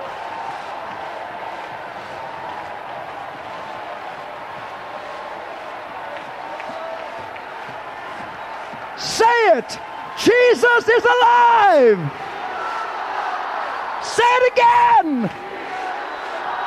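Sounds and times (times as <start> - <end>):
audience at a worship service cheering and shouting: 0.0 - 16.6
audience at a worship service clapping: 0.0 - 16.6
speech: 9.2 - 12.2, 14.2 - 15.4.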